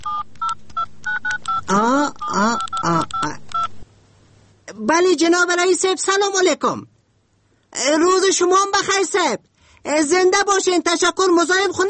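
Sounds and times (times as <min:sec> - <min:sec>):
touch-tone beeps of a telephone number dialed on a keypad: 0:00.0 - 0:01.6, 0:02.2 - 0:03.7
speech: 0:01.7 - 0:02.6, 0:05.0 - 0:06.9, 0:07.9 - 0:11.8.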